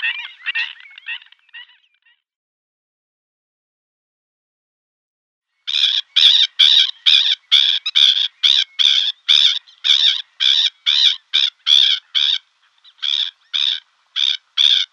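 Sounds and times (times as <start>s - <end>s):
black-winged stilt giving harsh nasal yapping calls: 0.0s - 2.2s, 5.7s - 14.9s.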